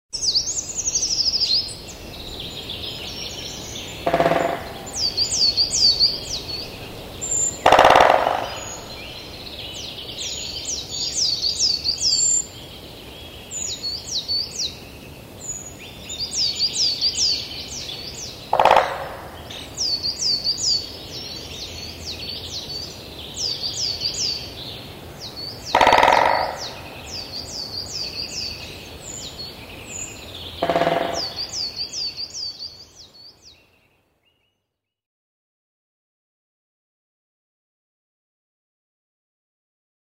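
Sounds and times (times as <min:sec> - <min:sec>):
great spotted woodpecker: 0:03.6 - 0:06.2, 0:07.2 - 0:09.1, 0:18.5 - 0:20.0, 0:25.6 - 0:27.3, 0:30.6 - 0:32.1.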